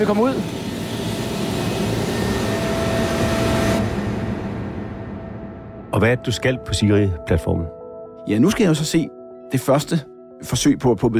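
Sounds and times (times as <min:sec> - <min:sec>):
speech: 0:00.0 - 0:00.6, 0:06.0 - 0:11.1
helicopter engine running on an oil platform: 0:00.0 - 0:06.0.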